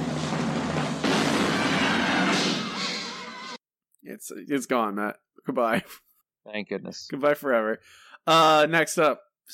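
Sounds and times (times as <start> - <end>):
cannon firing: 0.2 - 3.2
speech: 4.2 - 9.5.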